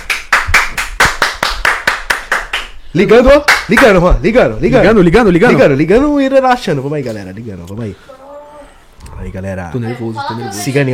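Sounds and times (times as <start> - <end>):
sharp hand claps: 0.0 - 4.0
speech: 2.9 - 8.1, 9.2 - 10.9.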